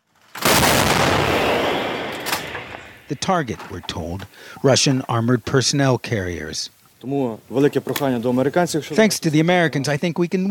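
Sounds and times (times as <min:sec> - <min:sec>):
artillery firing long-range rounds in eastern Ukraine: 0:00.3 - 0:03.1
speech: 0:03.1 - 0:10.4.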